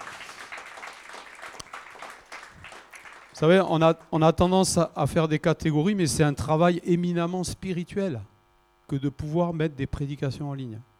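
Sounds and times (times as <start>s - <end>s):
audience applauding at a church gathering: 0.0s - 3.4s
speech: 3.4s - 8.3s, 8.9s - 10.9s.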